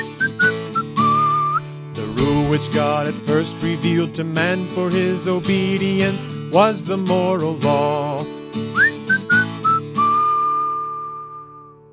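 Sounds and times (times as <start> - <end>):
person whistling a tune: 0.0 - 2.3, 8.7 - 11.9
speech: 2.5 - 8.3.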